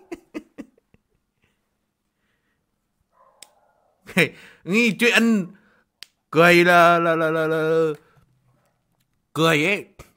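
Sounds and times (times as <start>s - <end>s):
dog barking outside: 3.1s - 4.1s
speech: 4.2s - 5.6s, 6.3s - 8.0s, 9.4s - 10.0s.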